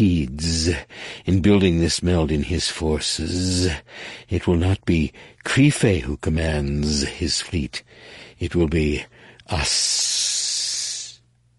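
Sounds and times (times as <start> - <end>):
narrator voicing a long breathy sibilant hiss: 0.0 - 2.1, 2.8 - 11.3
speech: 0.0 - 10.4.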